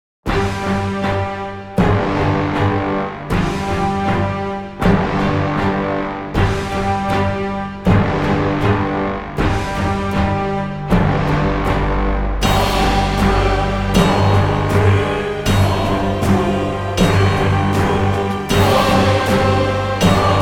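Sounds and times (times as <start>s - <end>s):
orchestra: 0.3s - 20.4s
choir: 1.8s - 20.4s.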